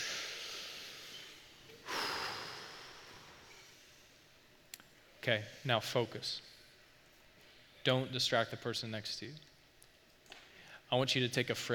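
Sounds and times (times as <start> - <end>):
group taking a deep breath together: 0.0 - 4.3
speech: 5.2 - 6.5, 7.8 - 9.5, 10.9 - 11.7.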